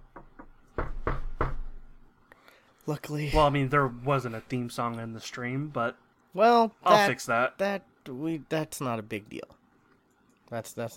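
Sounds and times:
knuckles knocking on wood: 0:00.1 - 0:01.8
speech: 0:02.9 - 0:09.6, 0:10.5 - 0:10.9.

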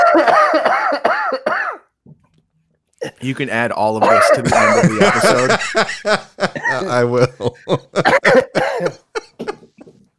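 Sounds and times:
harsh hacking coughs: 0:00.0 - 0:01.9, 0:04.0 - 0:05.5, 0:08.0 - 0:09.8
speech: 0:03.2 - 0:08.9
laughter: 0:03.8 - 0:10.0.

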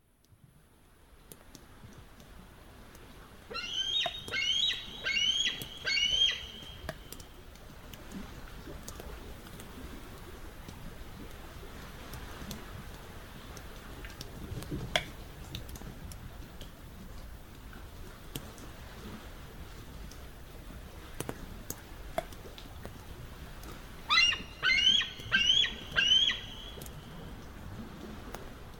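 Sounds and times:
steady low outdoor hiss: 0:00.0 - 0:28.7
bald eagle chattering cry: 0:03.6 - 0:06.6, 0:24.1 - 0:26.6.

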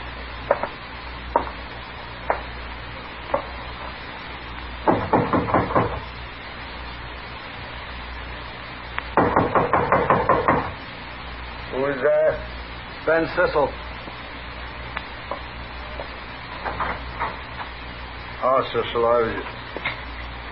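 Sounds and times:
low steady hum: 0:00.0 - 0:20.5
knocking on a wooden door: 0:04.9 - 0:06.0, 0:09.2 - 0:10.8
speech: 0:13.2 - 0:13.8, 0:18.6 - 0:19.6.

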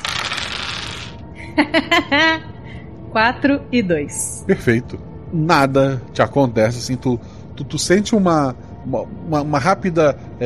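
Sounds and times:
two dice rattling and tumbling across a surface: 0:00.0 - 0:01.2
laughter: 0:01.4 - 0:02.5
speech: 0:01.6 - 0:02.5, 0:03.1 - 0:10.4.

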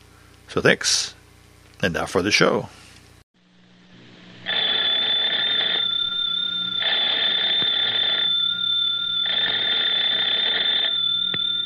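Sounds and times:
speech: 0:00.5 - 0:01.2, 0:01.8 - 0:02.8
telephone bell ringing: 0:04.4 - 0:11.6.

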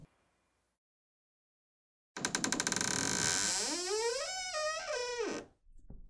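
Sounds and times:
long creaking tonal squeal: 0:02.3 - 0:05.5.

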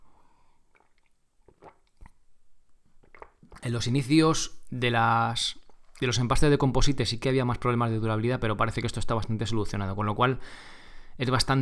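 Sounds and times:
person sipping a drink: 0:00.3 - 0:02.2, 0:02.9 - 0:03.7
person gulping: 0:00.6 - 0:03.8
wet mouth clicks: 0:00.7 - 0:02.2, 0:02.9 - 0:03.7
speech: 0:03.6 - 0:11.6.

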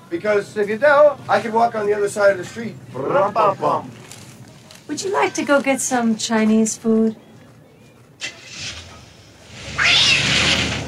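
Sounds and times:
speech: 0:00.1 - 0:04.0, 0:04.9 - 0:07.2
cat meowing: 0:09.8 - 0:10.3.

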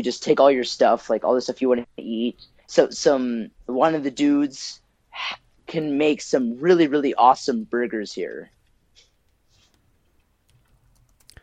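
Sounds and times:
speech: 0:00.0 - 0:08.6
typing on a computer keyboard: 0:08.4 - 0:11.4.

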